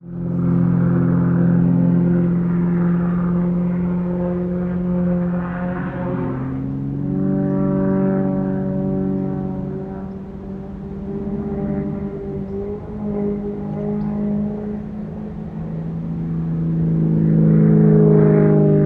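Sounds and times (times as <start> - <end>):
propeller plane doing acrobatics at an air show: 0.0 - 18.8.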